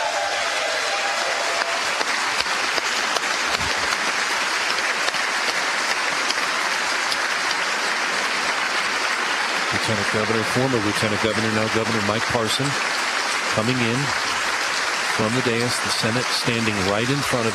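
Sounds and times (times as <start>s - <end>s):
large crowd applauding in a state Senate chamber: 0.0s - 17.5s
speech: 9.9s - 13.0s, 13.6s - 14.4s, 15.2s - 17.5s.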